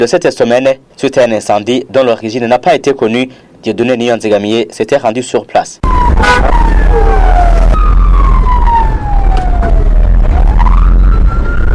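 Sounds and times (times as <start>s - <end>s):
speech: 0.0s - 7.4s
fire truck sirens wailing at market fire in northern Bujumbura: 5.8s - 11.7s
street noise: 5.8s - 11.7s.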